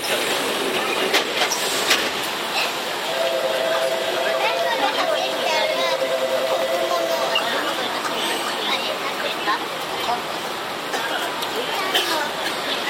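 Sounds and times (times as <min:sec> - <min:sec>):
Tokyu 7700 series commuter train rumble and hiss: 0:00.0 - 0:12.8
faint murmuring voices on a commuter train: 0:03.1 - 0:12.8.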